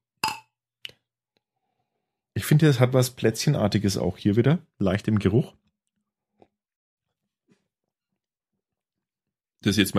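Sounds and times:
glasses clinking in a toast: 0.2s - 0.5s
speech: 2.4s - 5.6s, 9.6s - 9.9s.

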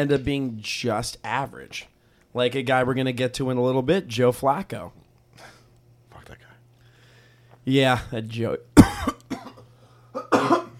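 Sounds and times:
speech: 0.0s - 5.5s, 7.6s - 9.1s
person coughing harshly: 8.8s - 10.7s.

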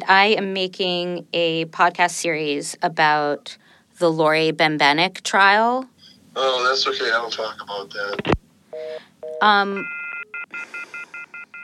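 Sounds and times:
speech: 0.1s - 11.1s
electronic telephone dial tones: 8.7s - 11.6s.

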